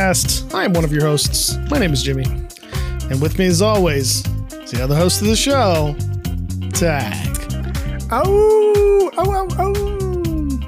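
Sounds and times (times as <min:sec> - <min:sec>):
speech: 0:00.1 - 0:02.5, 0:03.1 - 0:06.1, 0:06.7 - 0:07.4, 0:08.1 - 0:10.0
person imitating a wolf howl: 0:08.3 - 0:10.6.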